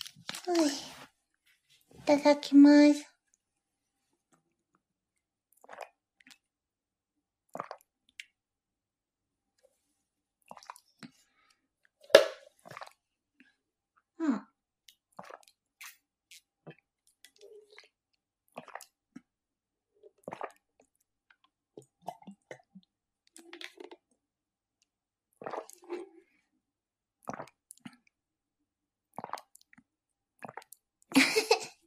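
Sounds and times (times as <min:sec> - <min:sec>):
speech: 0:00.5 - 0:00.9, 0:02.1 - 0:03.1
person gulping and swallowing water from a bottle: 0:05.5 - 0:06.5, 0:07.5 - 0:08.4, 0:10.4 - 0:11.2, 0:12.6 - 0:13.0, 0:14.8 - 0:19.4, 0:20.0 - 0:24.2, 0:25.3 - 0:26.4, 0:27.2 - 0:28.2, 0:29.1 - 0:31.8.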